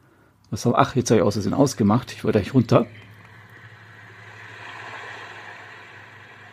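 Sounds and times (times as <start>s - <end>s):
speech: 0.5s - 3.0s
low droning hum: 1.8s - 6.5s
recorded ocean waves rushing: 2.9s - 6.5s.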